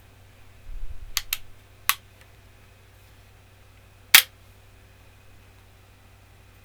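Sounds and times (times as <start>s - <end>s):
rifle lock mechanism: 1.2s - 2.0s, 4.1s - 4.3s.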